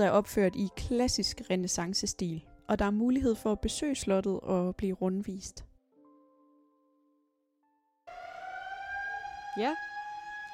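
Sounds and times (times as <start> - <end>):
speech: 0.0 - 5.7, 9.6 - 9.9
siren-like horn blast signalling lunch for construction workers: 8.1 - 10.5
soft steady tonal hum: 8.1 - 10.5.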